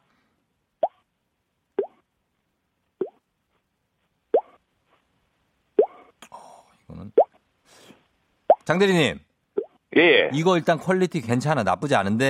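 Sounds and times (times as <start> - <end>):
mouth and hand imitation of water droplets dripping from eaves: 1.8 - 2.0, 4.3 - 4.6, 5.8 - 6.3, 8.5 - 8.7
speech: 8.7 - 9.3, 10.0 - 12.2.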